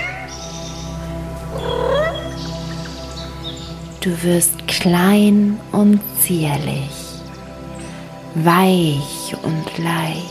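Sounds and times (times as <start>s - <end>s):
cat meowing: 1.6s - 2.3s
speech: 4.0s - 7.0s, 8.4s - 10.3s.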